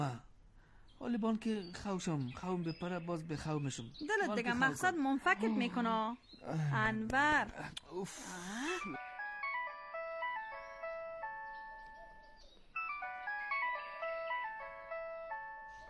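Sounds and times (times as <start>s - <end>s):
speech: 0.0s - 0.3s, 1.0s - 9.0s
mobile phone ringtone with bright electronic chiming melody: 8.9s - 15.8s.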